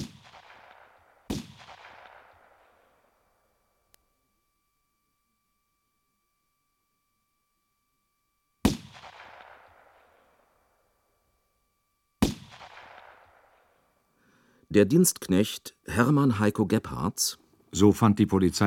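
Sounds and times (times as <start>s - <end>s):
gunshots with tails in a village centre from the church: 0.0s - 3.1s, 8.7s - 10.4s, 12.2s - 13.8s
speech: 14.7s - 18.6s.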